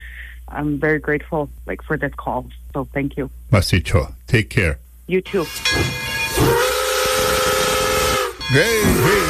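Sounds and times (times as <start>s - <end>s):
speech: 0.5s - 6.6s, 8.5s - 9.2s
steam train whistle blast: 5.4s - 9.2s.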